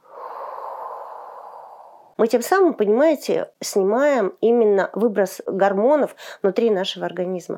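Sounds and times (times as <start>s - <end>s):
short inhale and long exhale in a calming breathing exercise: 0.0s - 2.2s
speech: 2.2s - 7.5s.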